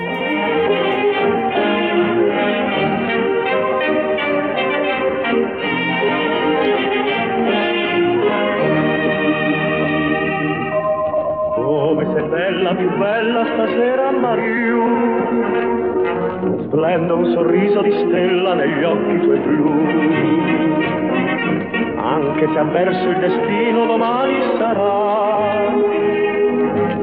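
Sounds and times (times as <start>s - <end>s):
lush orchestral backing: 0.0s - 27.0s
male singer crooning a romantic Italian song on a vintage recording: 11.6s - 15.5s, 16.7s - 20.9s, 21.9s - 26.0s
speech: 16.6s - 26.0s.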